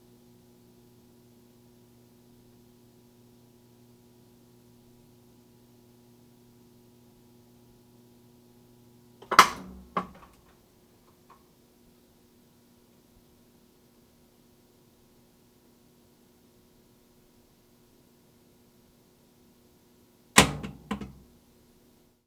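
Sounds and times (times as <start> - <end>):
washing machine initializing: 4.6 - 10.5, 20.4 - 21.3.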